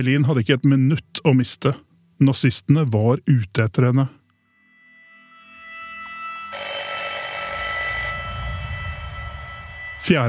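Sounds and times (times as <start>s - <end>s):
speech: 0.0s - 4.2s, 10.1s - 10.2s
old-fashioned office telephone bell ringing: 6.2s - 10.0s.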